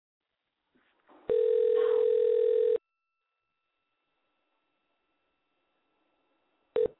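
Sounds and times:
buzzy phone line ring tone: 0:01.3 - 0:02.8, 0:06.8 - 0:06.9.

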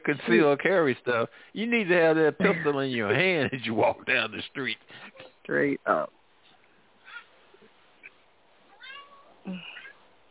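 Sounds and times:
low hiss: 0:00.0 - 0:10.2
speech: 0:00.1 - 0:06.2, 0:09.5 - 0:09.7
pet cat meowing: 0:08.7 - 0:10.0.

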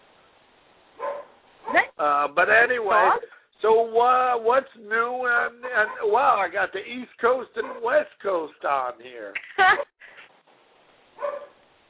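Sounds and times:
dog barking over a telephone line, unsettled by a cat: 0:01.0 - 0:01.9, 0:05.6 - 0:06.2, 0:07.6 - 0:07.9, 0:11.2 - 0:11.6
speech: 0:02.0 - 0:09.9.

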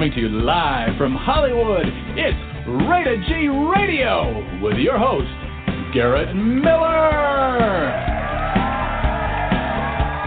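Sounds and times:
rhythmic beats: 0:00.0 - 0:10.2
speech: 0:00.1 - 0:08.1
crowd cheering wildly with whoops and shouts: 0:07.1 - 0:10.2.

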